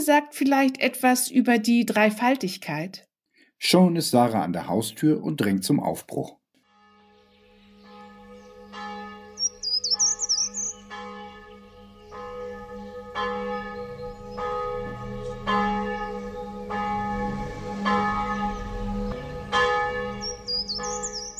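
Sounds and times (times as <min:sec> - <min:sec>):
speech: 0:00.0 - 0:06.4
church bells ringing before a church service: 0:06.7 - 0:21.3
birds chirping and twittering in a town park: 0:07.1 - 0:21.3.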